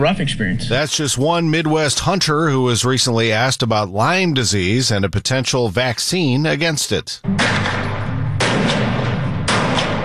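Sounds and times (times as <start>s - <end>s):
speech: 0.0s - 7.9s
gunshots with rolling echo at an outdoor shooting range: 7.3s - 10.0s.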